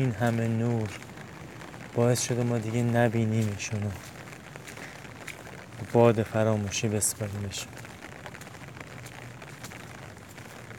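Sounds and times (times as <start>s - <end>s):
speech: 0.0s - 1.1s, 2.0s - 4.1s, 5.8s - 7.8s
steady soft rain falling at night: 0.0s - 10.7s.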